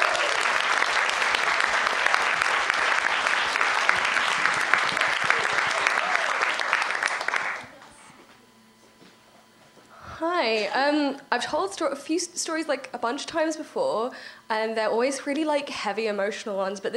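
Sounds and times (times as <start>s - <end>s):
audience clapping: 0.0s - 7.8s
speech: 11.1s - 16.9s.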